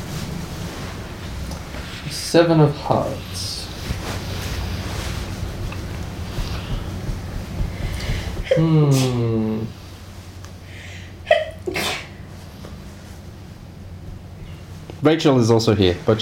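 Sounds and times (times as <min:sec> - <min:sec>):
low steady rumble: 0:00.0 - 0:16.2
speech: 0:02.1 - 0:03.6, 0:08.5 - 0:09.8, 0:15.0 - 0:16.2
loud sneeze with a drawn-out voiced tone: 0:08.2 - 0:09.4, 0:11.3 - 0:12.2.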